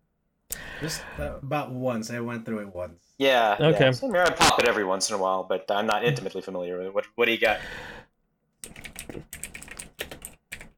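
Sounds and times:
speech: 0.8s - 8.0s
rapid typing on a keyboard: 8.6s - 10.7s.

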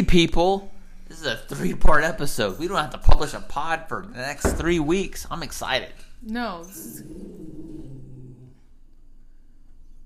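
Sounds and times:
speech: 0.0s - 7.7s
dog growling in a low rough rumble: 6.7s - 8.7s.

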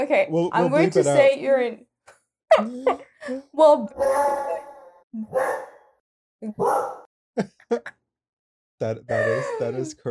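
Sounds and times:
speech: 0.0s - 1.9s, 2.5s - 5.7s, 6.4s - 8.0s, 8.8s - 10.0s
corgi barking: 4.0s - 5.8s, 6.6s - 7.1s.

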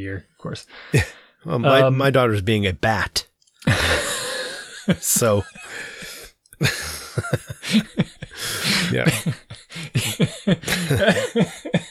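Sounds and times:
speech: 0.0s - 4.1s, 4.9s - 5.9s, 6.6s - 11.7s
breathy laughter: 3.6s - 11.8s
person coughing: 8.6s - 11.8s.

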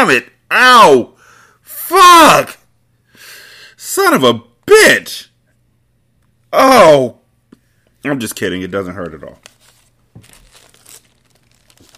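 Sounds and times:
speech: 0.0s - 1.2s, 1.9s - 2.6s, 3.9s - 5.3s, 6.5s - 7.2s, 8.0s - 9.5s
paper money bills slapped against a face: 9.0s - 11.9s.

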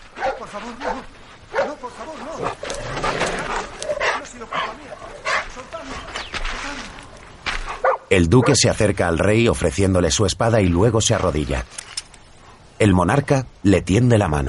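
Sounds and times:
escaped dog barking and yipping excitedly: 0.2s - 1.8s, 3.9s - 5.6s, 7.7s - 8.6s
speech: 0.4s - 1.2s, 8.1s - 11.8s, 12.8s - 14.4s.

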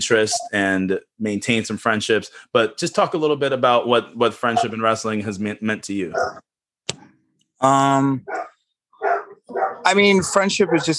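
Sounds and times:
speech: 0.0s - 8.5s, 9.5s - 10.9s
dog barking excitedly: 6.1s - 6.4s, 8.3s - 10.9s.

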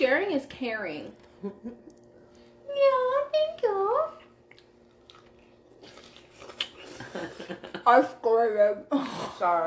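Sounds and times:
speech: 0.0s - 2.0s, 2.8s - 4.2s, 7.1s - 9.6s
wet chewing of juicy pineapple: 4.3s - 7.0s
biting a piece of pineapple: 4.5s - 6.9s.

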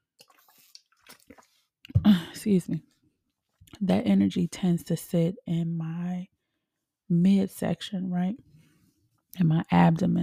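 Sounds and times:
person sipping water: 0.2s - 2.0s
swallowing: 0.2s - 2.0s
speech: 2.4s - 2.9s, 3.8s - 6.4s, 7.1s - 8.5s, 9.4s - 10.2s.

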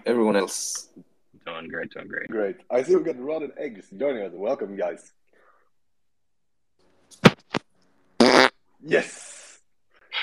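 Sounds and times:
speech: 0.1s - 1.0s, 1.6s - 5.2s, 8.8s - 9.3s
loud sputtering fart: 8.2s - 8.6s.

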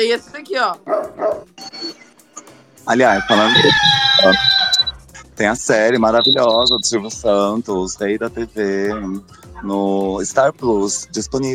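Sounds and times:
speech: 0.0s - 2.0s, 2.9s - 4.6s, 5.4s - 11.5s
dog barking: 0.9s - 1.5s
dog yipping and whining: 1.2s - 2.1s, 3.4s - 5.0s.

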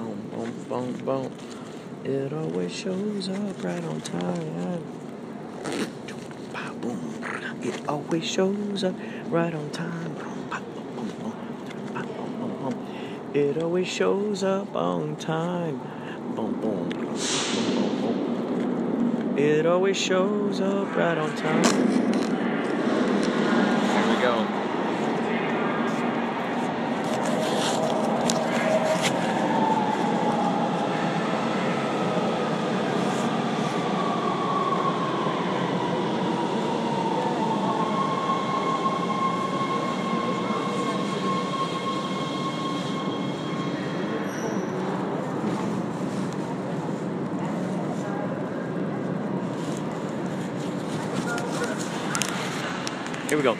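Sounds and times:
train rolling past on the rails: 0.0s - 53.5s
speech: 0.7s - 5.0s, 6.8s - 10.2s, 13.3s - 17.9s, 19.4s - 22.0s
faint high squealing tones: 37.7s - 44.9s.

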